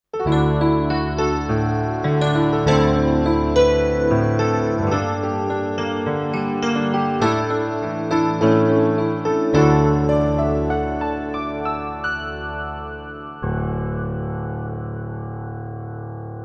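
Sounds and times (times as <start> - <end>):
CFX preset piano playing: 0.2 - 16.4.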